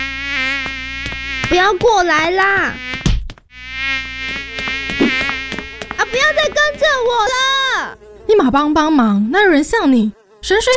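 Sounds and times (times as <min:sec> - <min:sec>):
swarm of flies buzzing: 0:00.0 - 0:10.7
speech: 0:01.5 - 0:03.0, 0:06.3 - 0:10.7.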